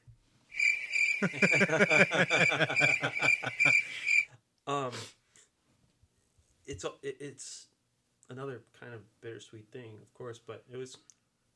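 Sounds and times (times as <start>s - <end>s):
crickets chirping in a high pulsing trill: 0.5s - 4.3s
speech: 1.2s - 4.1s, 4.7s - 5.2s, 6.7s - 7.7s, 8.3s - 11.2s
person chuckling and laughing: 1.2s - 4.2s.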